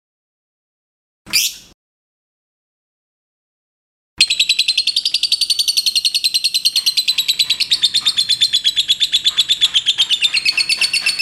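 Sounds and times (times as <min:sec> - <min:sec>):
lovebird of the liontin type singing a fast chattering trill: 0:04.2 - 0:11.1.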